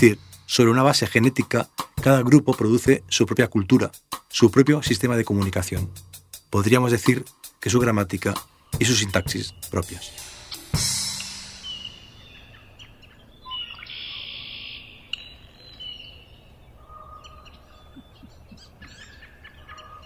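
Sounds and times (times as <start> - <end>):
speech: 0.0 - 11.0
steady outdoor ambience: 0.0 - 20.0
many wild birds singing and calling in a dawn chorus: 6.2 - 20.0.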